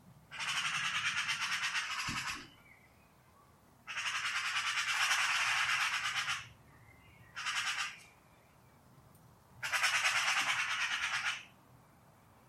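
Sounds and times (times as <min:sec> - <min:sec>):
Eurasian magpie chattering: 0:00.3 - 0:02.4, 0:03.9 - 0:06.5, 0:07.4 - 0:08.0, 0:09.6 - 0:11.5.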